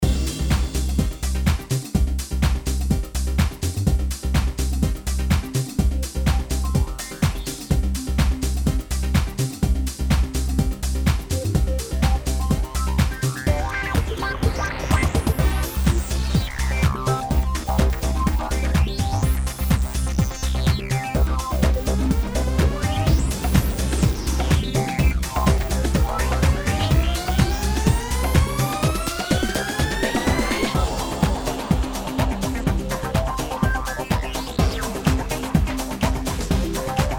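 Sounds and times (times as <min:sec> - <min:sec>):
fire music: 0:00.0 - 0:37.1.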